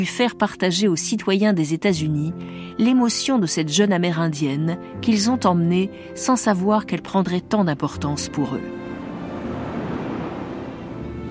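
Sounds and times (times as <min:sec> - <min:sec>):
speech: 0:00.0 - 0:08.8
ocean waves breaking: 0:08.6 - 0:11.2.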